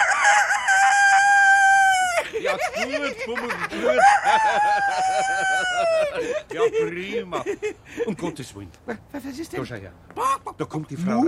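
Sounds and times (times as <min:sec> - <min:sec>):
rooster crowing: 0:00.0 - 0:02.4, 0:03.7 - 0:06.4
laughter: 0:01.9 - 0:09.1, 0:10.2 - 0:10.6
speech: 0:02.4 - 0:11.2.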